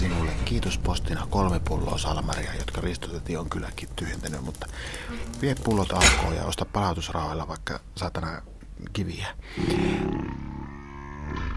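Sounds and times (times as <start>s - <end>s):
speech: 0.5s - 10.5s
tiger roaring with a growling texture: 9.6s - 11.5s.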